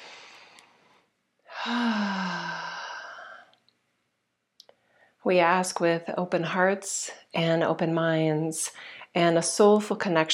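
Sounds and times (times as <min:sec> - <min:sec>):
long deep breath drawn in and let out like a sigh: 0:00.0 - 0:03.6, 0:04.8 - 0:05.2, 0:08.8 - 0:09.1
speech: 0:01.7 - 0:02.1, 0:05.2 - 0:10.3.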